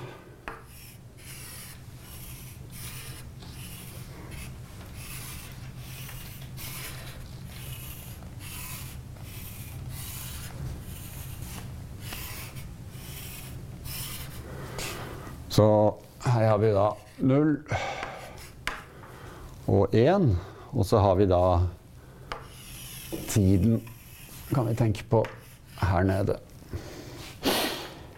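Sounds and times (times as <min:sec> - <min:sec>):
scratchy strokes of a diagram being drawn by hand: 0:00.6 - 0:15.0, 0:22.3 - 0:26.0
speech: 0:15.6 - 0:17.8, 0:19.7 - 0:21.8, 0:23.4 - 0:23.9, 0:24.5 - 0:26.5.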